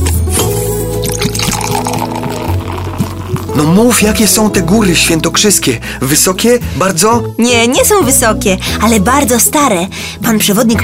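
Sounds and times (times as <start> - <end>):
person drinking water: 1.0 - 3.7
water pouring into a glass: 1.0 - 3.7
speech: 3.6 - 10.8.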